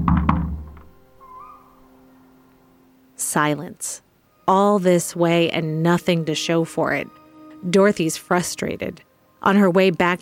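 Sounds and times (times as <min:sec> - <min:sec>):
woman knocking on a wooden front door: 0:00.0 - 0:00.9
speech: 0:03.3 - 0:10.2.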